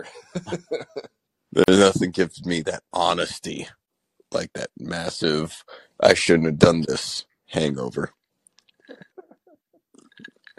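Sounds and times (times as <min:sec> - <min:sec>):
laughter: 0:00.0 - 0:02.2
speech: 0:00.0 - 0:08.2
swallowing: 0:09.9 - 0:10.5
person sipping tequila from a glass: 0:10.0 - 0:10.5.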